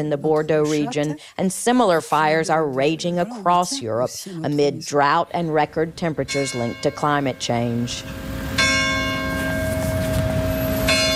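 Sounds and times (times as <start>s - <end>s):
speech: 0.0s - 8.4s
church bells ringing: 6.1s - 11.1s.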